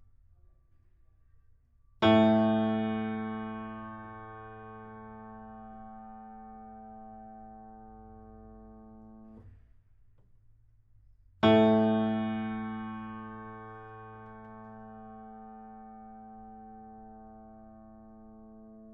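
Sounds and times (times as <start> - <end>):
piano intro: 2.0 - 9.5, 11.4 - 18.9.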